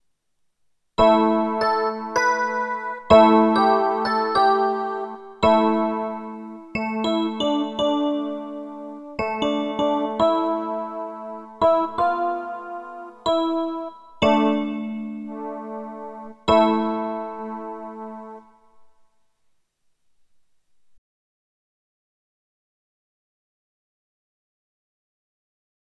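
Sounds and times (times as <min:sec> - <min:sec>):
electric piano: 0:01.0 - 0:18.8.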